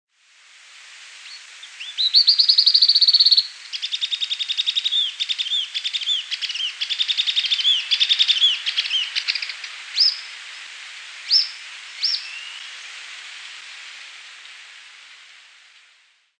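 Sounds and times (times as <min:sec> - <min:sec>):
grey elaenia Myiopagis caniceps calls: 0:01.2 - 0:10.5, 0:11.2 - 0:12.8
speech: 0:02.2 - 0:03.7.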